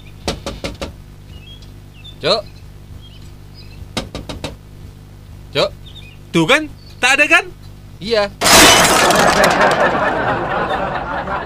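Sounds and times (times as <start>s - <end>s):
speech: 2.2s - 2.6s, 5.5s - 10.2s
knocking on a room door: 3.9s - 4.6s
laughter: 9.0s - 11.4s.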